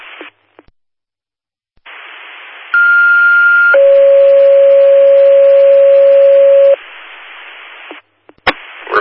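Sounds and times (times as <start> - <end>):
fire department dispatch alert tones over a radio for a structure fire: 2.8 - 6.8
hissy radio static: 6.0 - 8.9.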